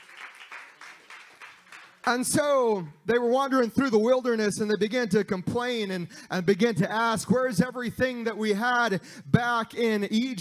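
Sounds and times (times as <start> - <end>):
crowd clapping in steady applause: 0.0 - 2.4
speech: 2.1 - 10.3.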